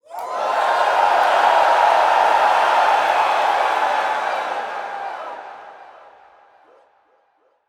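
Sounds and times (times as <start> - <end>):
crowd cheering heavily: 0.0 - 7.0.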